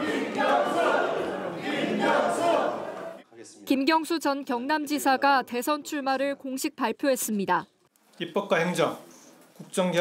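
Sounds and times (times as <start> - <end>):
crowd of supporters cheering and chanting a name at a presidential candidacy announcement: 0.0 - 3.2
speech: 3.7 - 9.9.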